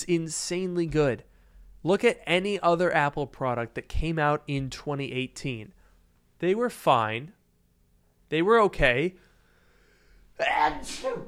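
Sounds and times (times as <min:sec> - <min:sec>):
speech: 0:00.0 - 0:05.8, 0:06.4 - 0:07.4, 0:08.3 - 0:09.2, 0:10.4 - 0:11.2
person sneezing: 0:10.4 - 0:11.2.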